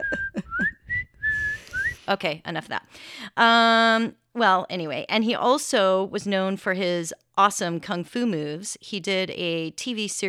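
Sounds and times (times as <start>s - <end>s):
person whistling a movie theme tune: 0.0s - 2.0s
speech: 2.1s - 10.2s.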